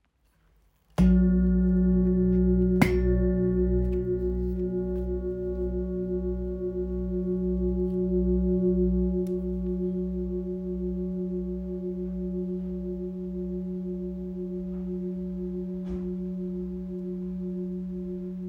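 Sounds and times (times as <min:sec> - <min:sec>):
large 9.72kg singing bowl in F sharp ringing: 0:01.0 - 0:18.4.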